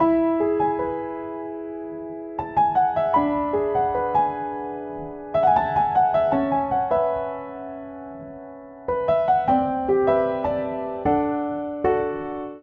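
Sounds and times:
upright piano chord progression in E major: 0.0 - 12.6.

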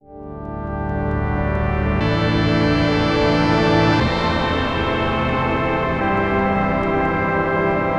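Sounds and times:
detuned synth pad: 1.6 - 7.9.

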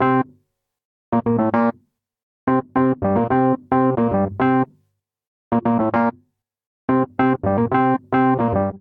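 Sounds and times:
funk vamp on electric keyboards: 1.2 - 1.7, 2.5 - 4.7, 5.5 - 6.1, 6.9 - 8.7.

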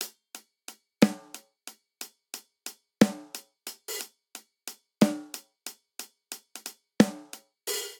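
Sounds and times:
swing RnB snare drum in six-eight at 90 bpm: 1.0 - 1.5, 3.0 - 4.1, 5.0 - 5.5, 6.4 - 7.9.

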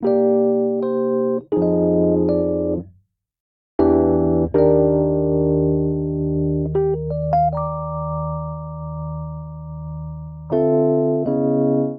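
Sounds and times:
soulful jazzy chord progression in E flat major on electric keyboards: 0.0 - 2.9, 3.8 - 11.9.

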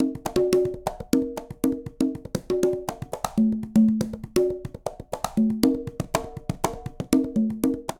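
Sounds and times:
quinto, conga and tumba drums playing a Mozambique rhythm at 120bpm: 0.0 - 7.9.

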